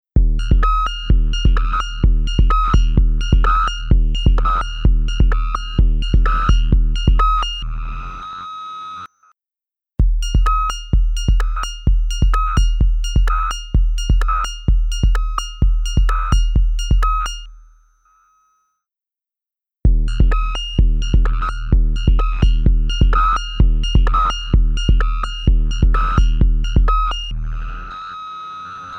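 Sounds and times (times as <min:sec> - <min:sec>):
drum machine snare: 0:00.2 - 0:07.6, 0:10.0 - 0:17.7, 0:19.9 - 0:27.3.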